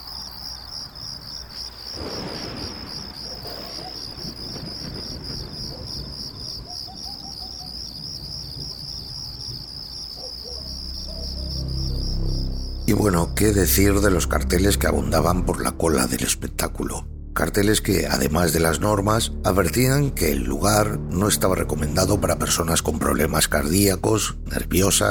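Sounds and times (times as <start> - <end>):
crickets chirping at night: 0.0 - 25.0
faint bird calls: 3.0 - 7.8
low rumbling outdoor background: 10.7 - 25.0
speech: 13.0 - 25.0.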